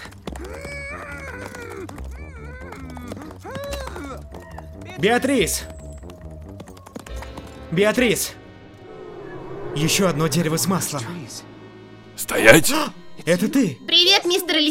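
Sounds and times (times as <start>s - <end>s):
ridden horse galloping through a forest: 0.0s - 7.6s
speech: 5.0s - 5.7s, 7.7s - 8.4s, 9.8s - 11.5s, 12.3s - 14.7s
loud tonal music: 8.4s - 13.8s
wordless vocal sounds: 8.6s - 13.5s.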